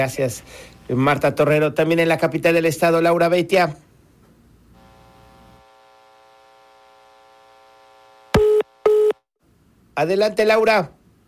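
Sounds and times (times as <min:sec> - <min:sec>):
speech: 0:00.0 - 0:03.8, 0:10.0 - 0:11.0
telephone busy tone after a call cuts off: 0:08.3 - 0:09.2.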